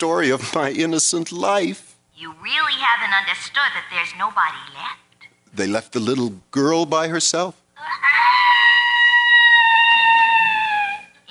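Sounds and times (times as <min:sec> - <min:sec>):
speech: 0:00.0 - 0:08.1
peacock screeching: 0:07.8 - 0:11.2.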